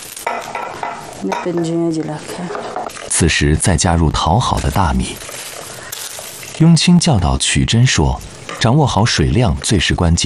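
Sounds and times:
utensils clattering and scraping against metal pot on wood stove: 0:00.1 - 0:06.9
speech: 0:01.2 - 0:05.3, 0:06.6 - 0:10.2.

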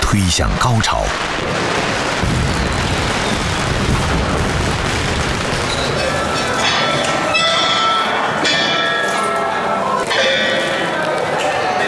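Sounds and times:
speech: 0:00.1 - 0:02.4
firecrackers set off by villagers crackling and popping during a dragon-dance parade: 0:00.6 - 0:08.4
loud busy crowd din: 0:03.8 - 0:11.8.

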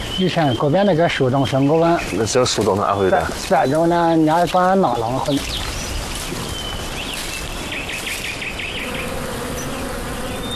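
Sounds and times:
speech: 0:00.2 - 0:05.6
honeybees buzzing in flight: 0:08.7 - 0:10.5.

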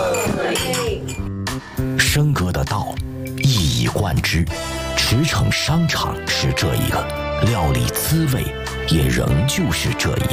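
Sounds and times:
glasses clinking in a toast among friends at a meal: 0:00.1 - 0:01.3
speech: 0:02.1 - 0:03.0, 0:03.8 - 0:10.3.

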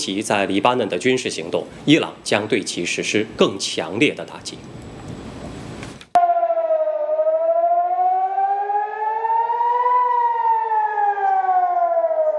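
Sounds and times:
speech: 0:00.0 - 0:04.8
loud air raid siren wailing: 0:06.2 - 0:12.3.

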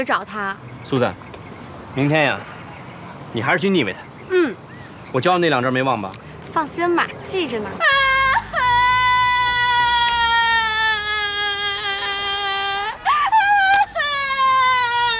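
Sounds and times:
speech: 0:00.0 - 0:01.2, 0:02.0 - 0:02.5, 0:03.3 - 0:07.9
woman crying in a long high wail: 0:07.8 - 0:15.1.

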